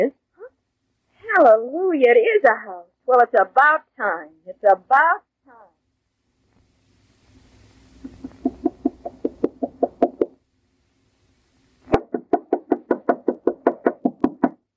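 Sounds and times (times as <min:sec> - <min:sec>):
speech: 0:00.0 - 0:00.2, 0:01.3 - 0:05.6
rapid knocking on a door: 0:08.4 - 0:10.4, 0:12.0 - 0:14.6.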